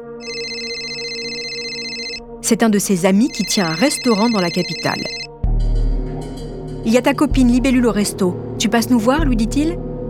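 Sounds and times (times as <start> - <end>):
telephone ringing with bright sustained electronic tone: 0.0 - 2.2, 3.3 - 5.3
speech: 2.4 - 5.2, 6.8 - 9.9.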